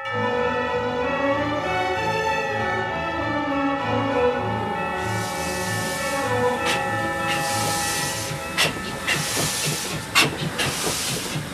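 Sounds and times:
steam train chugging: 0:00.2 - 0:11.5
hissing steam from a steam train: 0:04.7 - 0:11.5.

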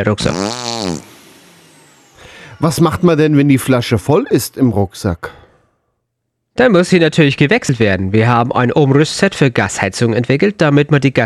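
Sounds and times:
speech: 0:00.0 - 0:01.1, 0:02.6 - 0:05.4, 0:06.6 - 0:11.2
buzzy fart: 0:00.2 - 0:01.4.

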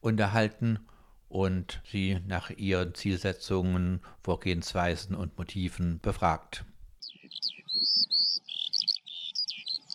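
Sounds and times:
speech: 0:00.0 - 0:06.7
Eurasian skylark singing over a field: 0:07.0 - 0:09.9.

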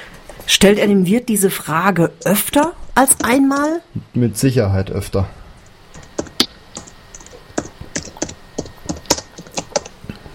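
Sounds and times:
speech: 0:00.5 - 0:05.4
rapid typing on a computer keyboard: 0:05.9 - 0:10.0.

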